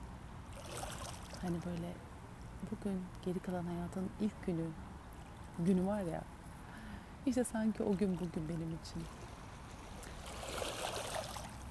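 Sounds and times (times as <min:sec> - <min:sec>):
sea waves at the seaside: 0:00.3 - 0:02.8, 0:03.7 - 0:11.7
faint small splashes: 0:00.4 - 0:03.3, 0:07.7 - 0:11.7
speech: 0:01.4 - 0:04.9, 0:05.6 - 0:06.4, 0:07.2 - 0:09.2.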